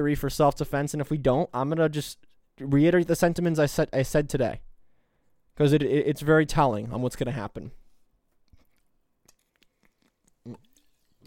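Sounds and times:
speech: 0.0 - 4.7, 5.6 - 7.8, 10.4 - 10.6
person sipping water: 8.3 - 11.2
gulp: 8.5 - 11.2.

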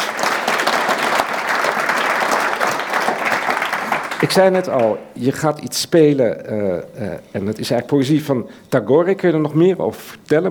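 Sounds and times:
room full of people applauding: 0.0 - 5.0
speech: 4.2 - 10.5.

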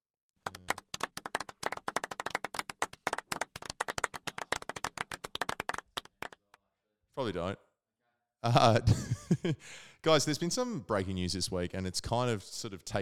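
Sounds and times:
soft polite clapping of a single person: 0.4 - 6.6
speech: 7.2 - 7.6, 8.4 - 13.0
laughter: 8.4 - 9.6.

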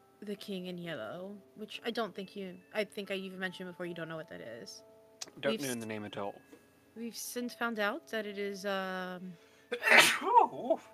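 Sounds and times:
speech: 0.2 - 10.9
person sneezing with a wavering vocal trail: 9.7 - 10.6.

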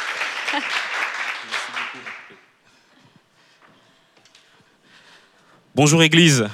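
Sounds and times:
audience applause: 0.0 - 2.5
speech: 0.5 - 0.8, 1.4 - 2.2, 5.8 - 6.5.

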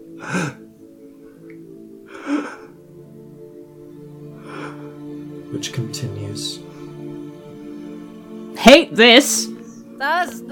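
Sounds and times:
soft ragged breathing: 0.0 - 3.2, 4.2 - 5.4
low sustained musical drone: 0.0 - 10.5
speech: 0.2 - 0.6, 5.6 - 6.7, 8.6 - 10.5.

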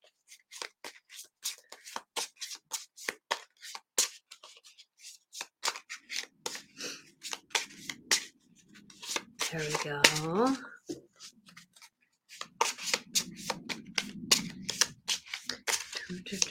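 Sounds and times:
deck of cards being shuffled: 0.3 - 16.4
soft rustling bed: 4.0 - 16.4
speech: 9.5 - 10.8.

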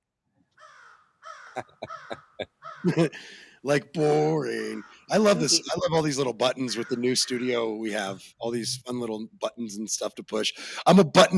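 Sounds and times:
crow cawing: 0.6 - 3.0, 6.8 - 7.6
laughter: 1.6 - 9.0
speech: 1.6 - 11.3.

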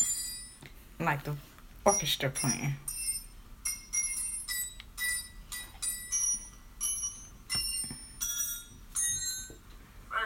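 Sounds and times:
speech: 1.0 - 3.0
Christmas melody tapped out on mechanical wrenches: 2.9 - 9.6.

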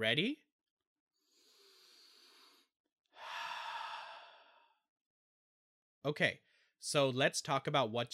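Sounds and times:
speech: 0.0 - 0.4, 6.0 - 8.1
deep breath in and out: 1.2 - 4.9.

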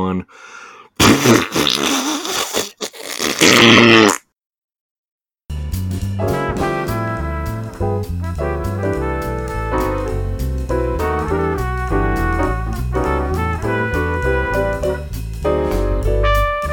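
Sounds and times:
speech: 0.0 - 2.2, 3.4 - 4.2
loud sputtering fart-like blast: 1.0 - 4.3
upbeat music with a steady beat: 5.7 - 16.7.

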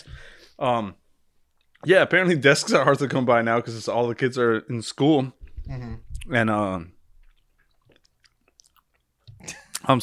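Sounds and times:
speech: 0.0 - 1.0, 1.8 - 7.0, 9.4 - 10.0
person chewing food: 7.1 - 9.8.

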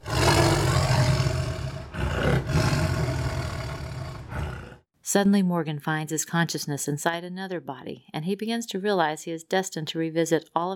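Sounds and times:
saber-toothed tiger roaring: 0.0 - 4.8
speech: 5.1 - 10.7.

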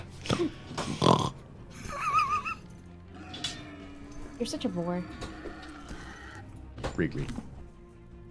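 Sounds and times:
person imitating angry pig grunts, snorts and squealing oink: 0.2 - 1.4
speech: 0.3 - 0.6, 4.4 - 5.3, 7.0 - 7.5.

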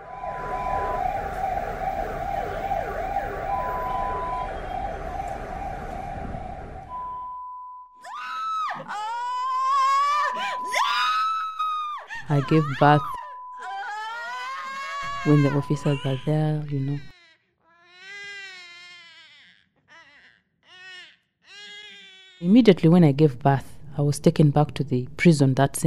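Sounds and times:
ambulance siren: 0.0 - 17.1
speech: 12.3 - 13.2, 15.2 - 17.1, 22.5 - 25.8.

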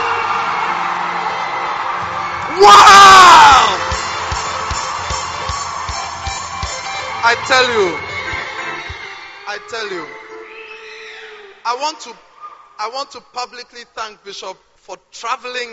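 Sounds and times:
congregation screaming and whooping cheers: 0.0 - 11.6
speech: 2.6 - 3.8, 7.3 - 8.0, 9.5 - 10.1, 11.7 - 12.2, 12.8 - 15.7
steady low thumping beat: 3.8 - 9.1.

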